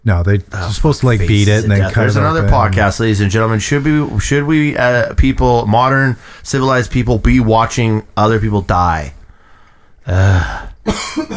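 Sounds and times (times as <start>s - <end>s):
speech: 0.0s - 9.2s, 10.1s - 11.3s
person coughing after inhaling saliva: 10.8s - 11.3s.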